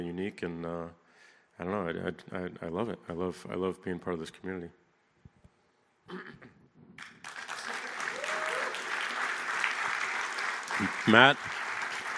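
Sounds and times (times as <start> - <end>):
speech: 0.0 - 1.0, 1.6 - 4.8, 6.1 - 6.6, 10.8 - 11.6
crowd clapping in sustained applause: 7.0 - 12.1
person whooping: 7.8 - 8.9.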